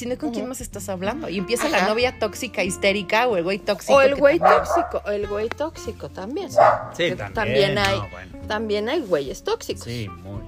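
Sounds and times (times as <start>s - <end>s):
speech: 0.0s - 10.4s
dog barking: 4.2s - 5.1s, 6.5s - 7.0s.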